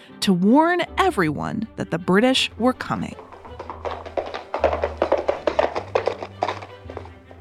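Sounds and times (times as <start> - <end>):
speech: 0.2 - 3.3
horse hooves clip-clopping: 2.8 - 7.4.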